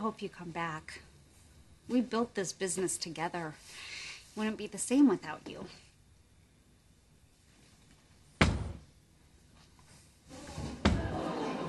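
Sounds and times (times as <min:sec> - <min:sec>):
speech: 0:00.0 - 0:01.1, 0:01.9 - 0:05.8
door shutting with a solid thud: 0:08.4 - 0:08.8, 0:10.4 - 0:11.2
laughter: 0:10.9 - 0:11.6.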